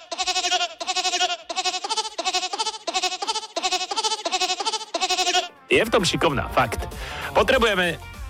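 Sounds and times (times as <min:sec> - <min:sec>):
goat bleating: 0:00.0 - 0:05.6
speech: 0:05.7 - 0:08.1.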